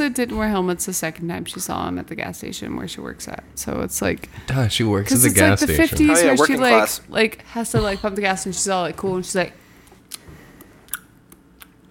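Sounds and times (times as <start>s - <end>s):
speech: 0.0s - 9.6s
wet mouth smacks and clicks mimicking chewing gum: 10.1s - 11.9s.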